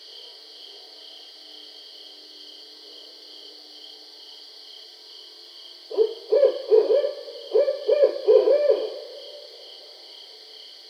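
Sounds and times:
Barred owl hooting: 0:05.9 - 0:09.6.

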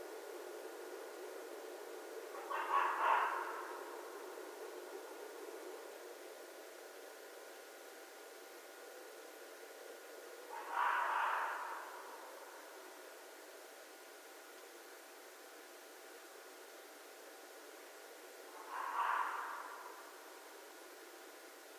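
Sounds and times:
red fox giving harsh rasping screams: 0:02.4 - 0:03.8, 0:10.5 - 0:12.1, 0:18.6 - 0:20.0.

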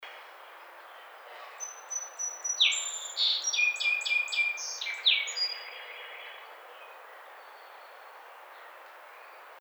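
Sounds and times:
song sparrow: 0:00.0 - 0:09.5.

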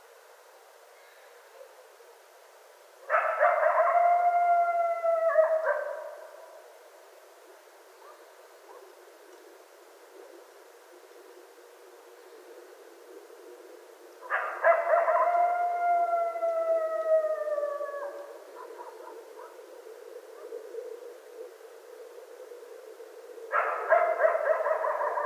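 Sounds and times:
coyote howling: 0:03.1 - 0:06.6, 0:14.2 - 0:25.2.

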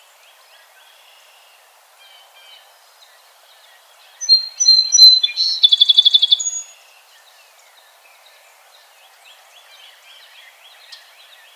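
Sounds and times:
song sparrow singing: 0:00.1 - 0:11.5.

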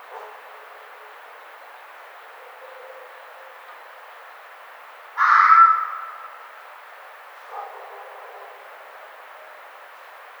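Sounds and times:
red fox giving a hoarse screechy bark: 0:05.2 - 0:06.4.

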